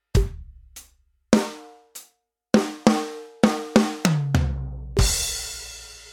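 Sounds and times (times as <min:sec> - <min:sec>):
drum kit fill at 50 bpm: 0:00.1 - 0:00.7, 0:02.6 - 0:06.1.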